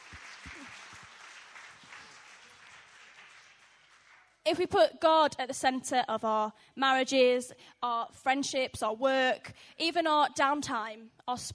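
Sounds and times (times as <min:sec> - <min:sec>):
crowd applause: 0:00.0 - 0:04.4
speech: 0:04.5 - 0:11.5.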